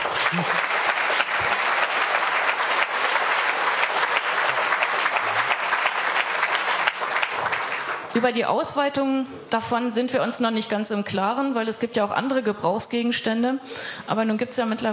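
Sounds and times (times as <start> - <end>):
applause from a sizable audience: 0.0 - 8.1
speech: 0.3 - 0.7, 8.2 - 14.9.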